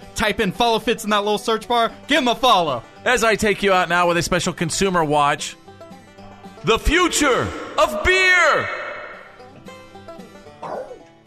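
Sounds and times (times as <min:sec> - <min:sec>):
speech: 0:00.2 - 0:05.6, 0:06.6 - 0:08.8
dog barking and yipping in a studio: 0:10.6 - 0:11.0.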